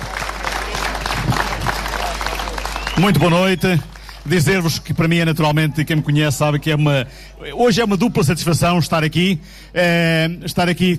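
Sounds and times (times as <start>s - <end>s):
audience applause at a public event: 0.0s - 4.7s
speech: 3.0s - 10.9s.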